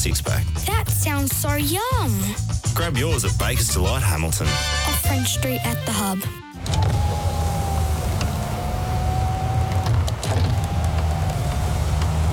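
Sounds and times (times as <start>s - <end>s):
speech: 0.0s - 7.0s
car electric windows whirring up and down: 6.6s - 12.3s
low rumbling background: 6.6s - 12.3s.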